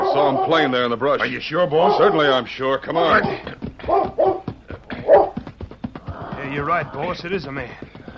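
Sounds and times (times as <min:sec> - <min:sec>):
dog barking: 0:00.0 - 0:00.7, 0:01.8 - 0:02.3, 0:03.8 - 0:05.4
speech: 0:00.2 - 0:04.3, 0:06.6 - 0:08.1.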